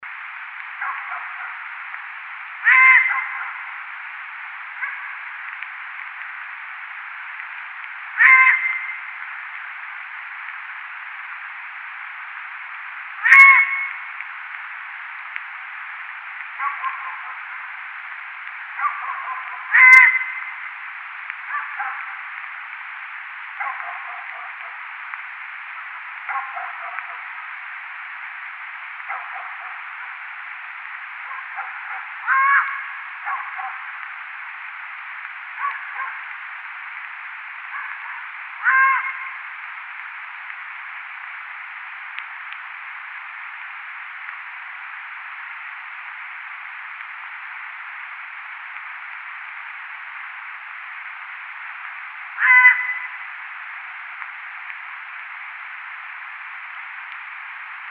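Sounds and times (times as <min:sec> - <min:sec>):
long-eared owl calling: 0:00.8 - 0:01.7, 0:02.6 - 0:03.8, 0:04.7 - 0:05.6, 0:08.1 - 0:09.2, 0:13.2 - 0:14.2, 0:16.6 - 0:17.8, 0:18.7 - 0:22.4, 0:23.5 - 0:25.1, 0:26.2 - 0:27.6, 0:29.0 - 0:30.3, 0:31.2 - 0:34.1, 0:35.5 - 0:36.4, 0:37.6 - 0:39.5, 0:52.3 - 0:53.3.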